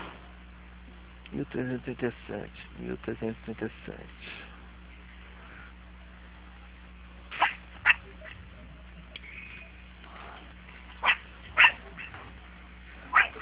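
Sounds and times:
speech: 1.3 - 4.5
large dog barking: 11.0 - 12.2, 13.1 - 13.4.

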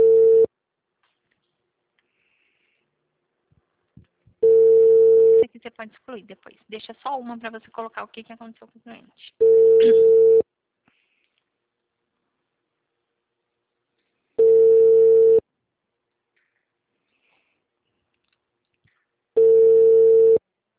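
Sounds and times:
ringback tone of an outgoing telephone call: 0.0 - 0.5, 4.4 - 5.4, 9.4 - 10.4, 14.4 - 15.4, 19.4 - 20.4
speech: 5.6 - 10.3.

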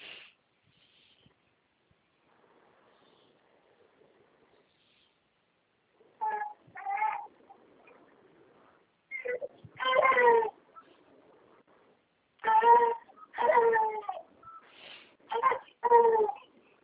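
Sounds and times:
small baby crying in short strained wails: 6.2 - 7.3, 9.1 - 10.6, 12.4 - 14.3, 15.3 - 16.5.

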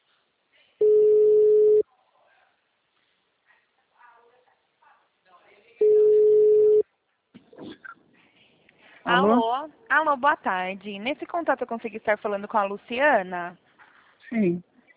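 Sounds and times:
telephone ringback tone while a call is placed: 0.8 - 1.8, 5.8 - 6.8
speech: 9.1 - 13.6, 14.3 - 14.7.

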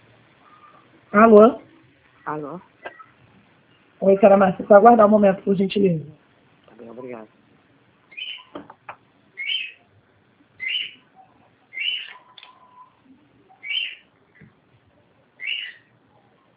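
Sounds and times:
speech: 1.1 - 1.6, 2.3 - 3.0, 4.0 - 6.2, 6.8 - 7.4
small bird chirping in short high bursts: 8.1 - 8.6, 9.4 - 9.8, 10.6 - 14.1, 15.4 - 15.9.

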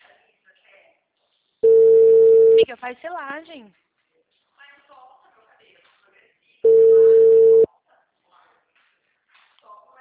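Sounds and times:
telephone call tone as an outgoing call connects: 1.6 - 2.6, 6.7 - 7.7
speech: 2.7 - 3.8.

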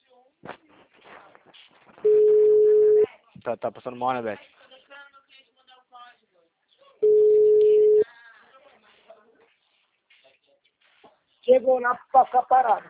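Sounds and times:
telephone line tone after a dropped phone call: 2.1 - 3.1, 7.0 - 8.0
speech: 3.4 - 4.6, 11.7 - 12.8.

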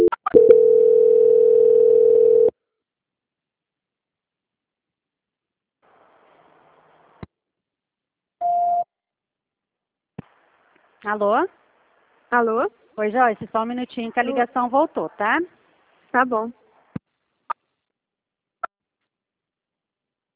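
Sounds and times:
steady mid-pitched telephone tone during a call transfer: 0.0 - 2.5
speech: 11.1 - 11.6, 12.3 - 16.6.

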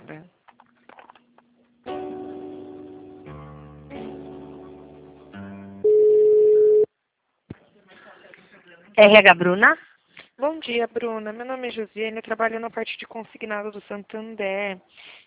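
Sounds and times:
telephone line tones while a call is being transferred: 5.8 - 6.9
speech: 9.0 - 9.9, 10.6 - 15.2.

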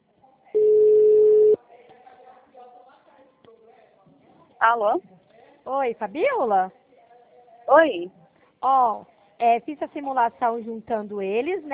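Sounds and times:
telephone tone while a call is dialed: 0.6 - 1.6
speech: 4.6 - 6.8, 7.7 - 11.7.

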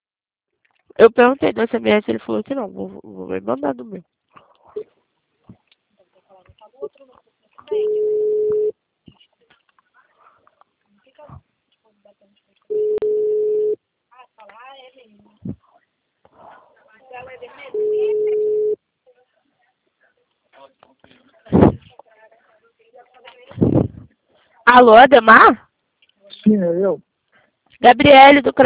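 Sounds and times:
speech: 1.0 - 4.2, 6.8 - 8.4, 24.7 - 25.7, 26.4 - 27.1, 27.8 - 28.6
telephone line tone beeps after a dropped call: 7.7 - 8.7, 12.7 - 13.8, 17.8 - 18.8.

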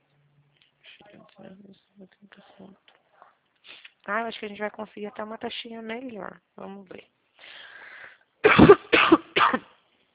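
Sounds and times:
speech: 1.4 - 3.0, 4.0 - 7.2, 8.5 - 9.7
breathy sound: 7.4 - 8.3
person coughing: 8.4 - 9.8.

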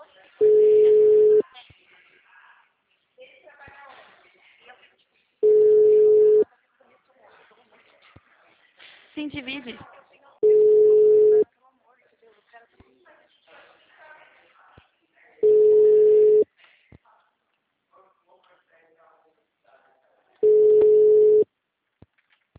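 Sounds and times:
low telephone line signal beeps: 0.4 - 1.4, 5.4 - 6.4, 10.4 - 11.4, 15.4 - 16.4, 20.4 - 21.4
speech: 9.3 - 10.0.

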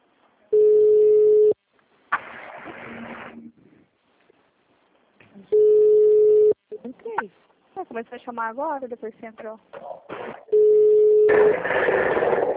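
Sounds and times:
ringing tone on a group phone call: 0.6 - 1.6, 5.6 - 6.6, 10.5 - 11.6
speech: 8.0 - 9.8, 11.3 - 12.2.

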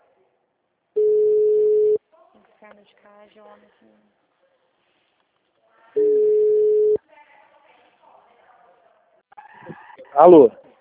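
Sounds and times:
telephone line tone after a dropped call: 1.0 - 2.0, 6.0 - 7.0
quiet talk: 2.0 - 10.7
speech: 2.7 - 4.2, 10.2 - 10.6.

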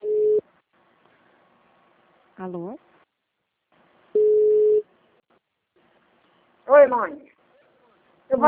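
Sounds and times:
telephone tone after a dropped call: 0.0 - 0.4, 4.2 - 4.8
faint hiss: 0.0 - 8.4
speech: 2.4 - 2.9, 6.7 - 7.3.

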